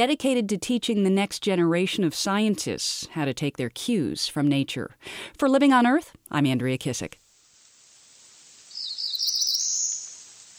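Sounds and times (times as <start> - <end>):
speech: 0.0 - 7.2
Cerulean Warbler singing: 8.8 - 10.2.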